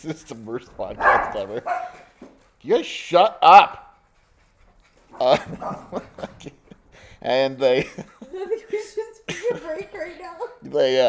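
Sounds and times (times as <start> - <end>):
laughter: 0.0 - 2.1, 5.1 - 11.0
speech: 0.0 - 3.8, 5.1 - 6.6, 7.2 - 11.0
dog yelping: 0.9 - 2.1, 5.1 - 6.2
dogs yipping and whimpering: 0.9 - 2.2, 4.3 - 6.5.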